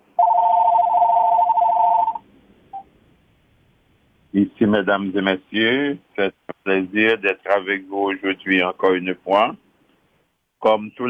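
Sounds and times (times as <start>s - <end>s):
telephone ringing with buzzy electronic tone: 0.2s - 2.2s
speech: 4.4s - 9.6s, 10.6s - 11.0s.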